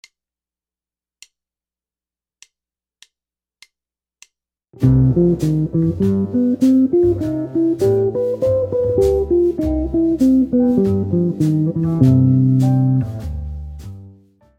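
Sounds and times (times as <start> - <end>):
bebop jazz guitar: 4.8 - 14.2.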